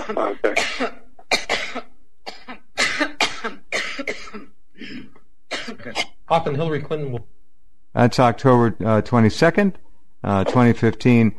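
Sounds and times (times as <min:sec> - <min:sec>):
woman coughing in a played recording: 0:00.0 - 0:06.2
speech: 0:00.1 - 0:01.0, 0:06.3 - 0:07.4, 0:08.0 - 0:11.3.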